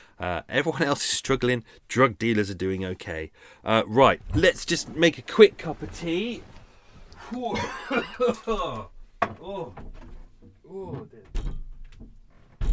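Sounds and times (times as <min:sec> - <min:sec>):
speech: 0:00.2 - 0:06.5, 0:07.2 - 0:10.0, 0:10.7 - 0:11.4
laughter: 0:07.3 - 0:08.8
door opening with knocks and clatters: 0:09.2 - 0:12.7.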